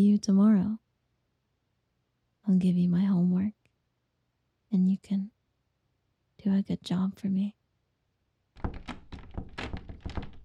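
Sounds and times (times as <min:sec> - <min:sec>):
speech: 0:00.0 - 0:00.8, 0:02.4 - 0:03.6, 0:04.7 - 0:05.4, 0:06.4 - 0:07.6
locked door being tried, thunking and rattling: 0:08.6 - 0:10.4.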